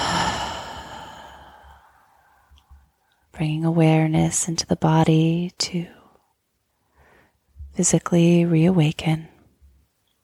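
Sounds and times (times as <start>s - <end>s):
deep breath out through the mouth during a guided meditation: 0.0s - 2.1s
speech: 3.4s - 6.0s, 7.8s - 9.3s.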